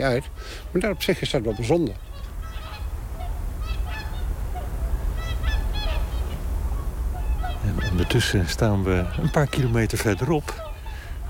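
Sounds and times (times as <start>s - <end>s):
speech: 0.0s - 2.1s, 8.0s - 10.7s
constant low rumble of wind: 0.0s - 11.2s
whooper swans calling as they fly in over fields: 0.0s - 11.2s.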